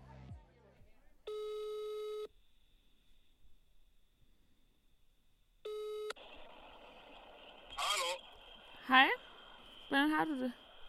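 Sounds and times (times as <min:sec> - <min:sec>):
long electronic phone ringing tones: 0:01.3 - 0:02.3, 0:05.6 - 0:06.2
speech: 0:08.9 - 0:09.2, 0:09.9 - 0:10.6.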